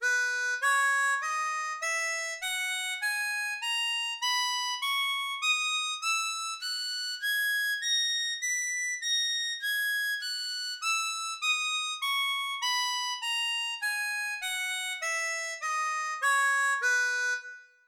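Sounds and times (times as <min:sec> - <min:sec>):
harmonica playing B major scales: 0:00.0 - 0:17.8.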